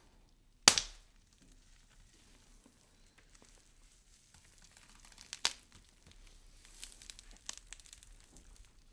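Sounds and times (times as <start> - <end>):
leg bone breaking and twisting: 0.7 - 1.1, 4.5 - 8.8.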